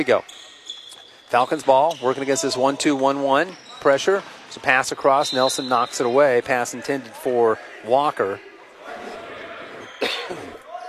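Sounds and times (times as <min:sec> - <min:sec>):
speech: 0:00.0 - 0:00.4, 0:01.3 - 0:08.5
cough into a microphone during basketball game commentary: 0:10.0 - 0:10.6.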